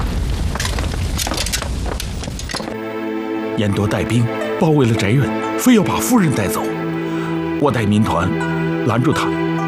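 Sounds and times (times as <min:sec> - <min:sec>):
dense crackling of a house fire: 0:00.0 - 0:02.9
speech: 0:03.6 - 0:06.8, 0:07.6 - 0:09.5.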